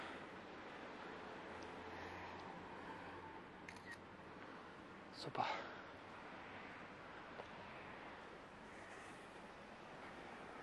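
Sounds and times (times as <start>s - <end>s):
steady hiss: 0.0s - 10.6s
camera shutter clicks as photos are taken: 3.7s - 4.0s
speech: 5.2s - 5.8s.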